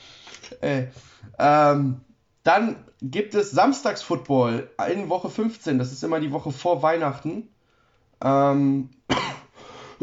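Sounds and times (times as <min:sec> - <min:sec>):
speech: 0:00.5 - 0:07.6, 0:08.2 - 0:09.3
person coughing: 0:09.1 - 0:10.0.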